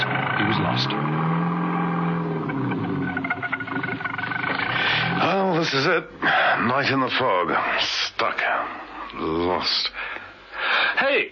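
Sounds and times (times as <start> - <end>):
car engine rumbling while driving slowly through fog: 0.0 - 6.2
speech: 5.6 - 10.1, 11.0 - 11.3.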